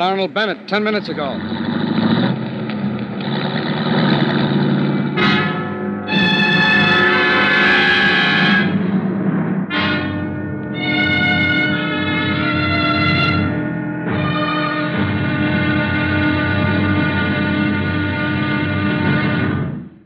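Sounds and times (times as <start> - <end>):
speech: 0.0 - 2.2
police car engine rumbling as it careens into a driveway: 0.0 - 20.0
police car horn blasts: 5.1 - 9.0, 9.7 - 19.7.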